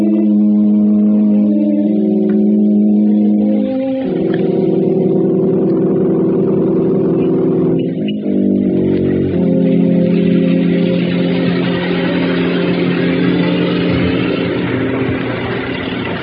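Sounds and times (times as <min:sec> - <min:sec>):
car engine running as the vehicle pulls up and idles: 0:00.0 - 0:16.2.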